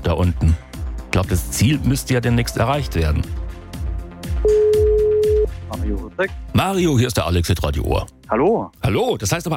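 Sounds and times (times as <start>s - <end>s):
speech: 0.0s - 3.5s, 5.7s - 9.5s
steady telephone ringback tone: 4.4s - 5.5s.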